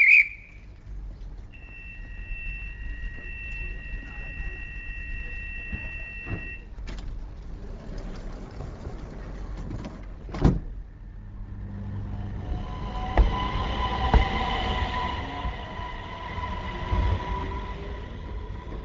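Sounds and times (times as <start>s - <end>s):
faint tonal hums: 0.0s - 7.6s, 11.0s - 18.8s
train pulling away with a low steady rumble: 0.0s - 18.8s.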